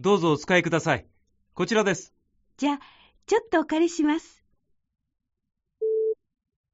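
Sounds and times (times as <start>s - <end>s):
speech: 0.0s - 4.4s
pure mid-pitched telephone call tone beep: 5.8s - 6.2s.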